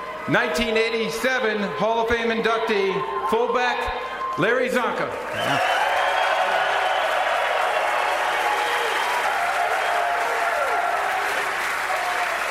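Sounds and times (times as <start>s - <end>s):
speech: 0.2s - 5.8s
large audience applauding at draft event: 4.2s - 12.5s.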